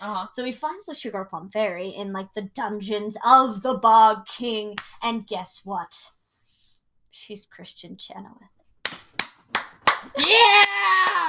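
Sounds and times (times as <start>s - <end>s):
speech: 0.0s - 6.2s, 7.2s - 9.0s, 10.1s - 11.2s
hand claps: 8.8s - 11.2s
person cheering: 10.1s - 11.2s.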